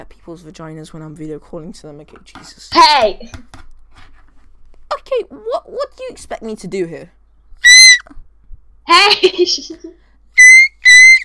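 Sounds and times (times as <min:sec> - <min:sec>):
speech: 0:00.2 - 0:03.6, 0:05.1 - 0:07.2, 0:08.9 - 0:10.0
high-pitched bushcraft whistle blasts: 0:07.6 - 0:08.1, 0:10.4 - 0:11.2
voice or laughter: 0:08.9 - 0:10.0.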